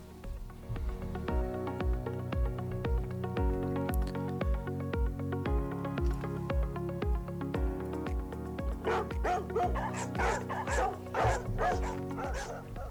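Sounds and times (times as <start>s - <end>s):
steady thumping musical beat: 0.3s - 12.9s
several dogs barking: 8.8s - 12.9s.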